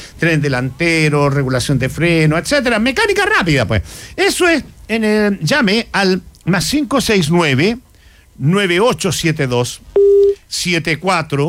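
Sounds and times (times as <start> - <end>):
speech: 0.2 - 7.8, 8.4 - 11.4
telephone busy tone after a dropped call: 10.0 - 10.4.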